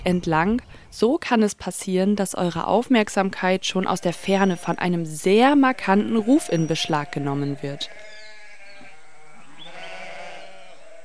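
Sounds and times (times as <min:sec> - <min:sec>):
speech: 0:00.0 - 0:08.2
dike sheep bleating: 0:03.8 - 0:11.0.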